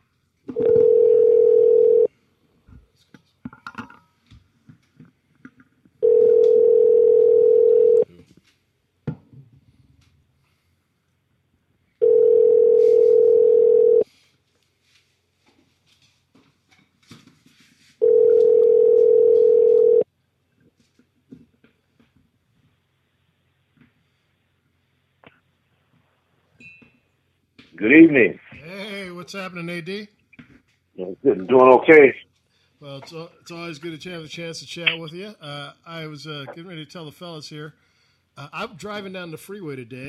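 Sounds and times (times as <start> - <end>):
telephone ringback tone while call connects: 0.6 - 2.1, 6.0 - 8.0, 12.0 - 14.0, 18.0 - 20.0
speech: 27.8 - 28.5, 29.3 - 30.2, 31.0 - 32.2, 32.8 - 40.0.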